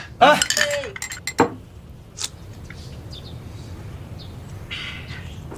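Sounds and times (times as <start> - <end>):
glasses clinking in a drinking toast at an army comrades' reunion: 0.3 - 1.6.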